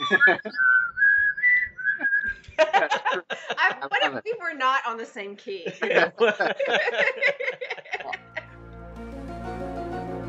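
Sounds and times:
laughter: 0:00.0 - 0:00.7, 0:02.2 - 0:04.2, 0:05.6 - 0:08.5
person whistling a TV theme song: 0:00.0 - 0:02.4
speech: 0:00.1 - 0:00.8, 0:03.8 - 0:07.7.

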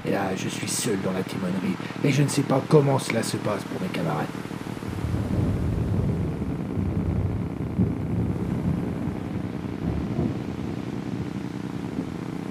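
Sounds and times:
speech: 0:00.2 - 0:04.6
storm wind at sea buffeting a boat: 0:04.6 - 0:12.4.

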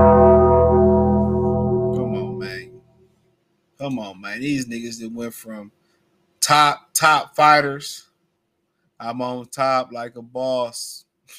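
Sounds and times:
deep bell strike: 0:00.0 - 0:02.9
speech: 0:03.9 - 0:05.8, 0:06.5 - 0:08.1, 0:09.0 - 0:11.3.

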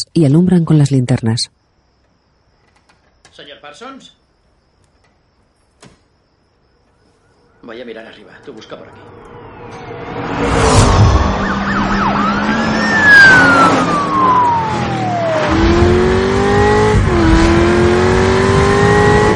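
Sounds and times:
speech: 0:00.2 - 0:01.6, 0:03.4 - 0:04.2, 0:07.6 - 0:10.6
police sirens wailing: 0:07.4 - 0:19.3
speeding car engines roaring: 0:07.7 - 0:19.3.

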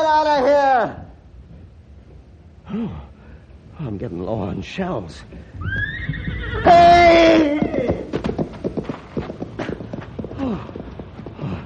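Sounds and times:
speech: 0:03.8 - 0:07.9
frightened horse strained whinny: 0:05.6 - 0:08.1
frightened horse hooves galloping: 0:05.6 - 0:11.6.

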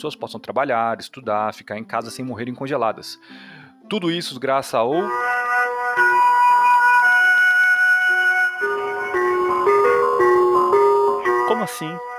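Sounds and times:
speech: 0:00.0 - 0:06.1, 0:11.6 - 0:12.1
gas delivery truck electronic jingle: 0:05.0 - 0:12.1.

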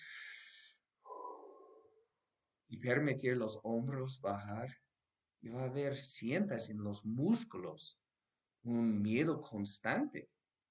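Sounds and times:
deep breath: 0:00.0 - 0:02.1
speech: 0:02.7 - 0:04.8, 0:05.4 - 0:08.0, 0:08.6 - 0:10.4.

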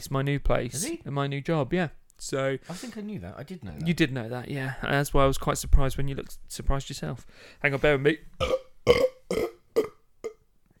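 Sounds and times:
speech: 0:00.0 - 0:09.1
person burping after gulping a drink: 0:08.4 - 0:10.4.

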